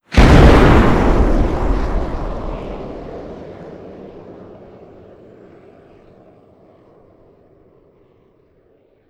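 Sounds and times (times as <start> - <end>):
aircraft flyover boom: 0.1 - 5.8.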